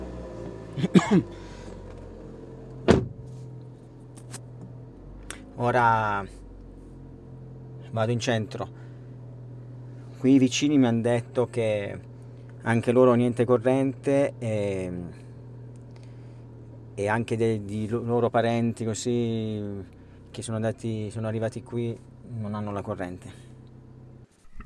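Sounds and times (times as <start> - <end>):
speech: 0.9 - 1.4, 5.7 - 6.4, 7.9 - 8.8, 10.2 - 15.2, 17.0 - 23.5
car door thudding shut: 2.9 - 3.2.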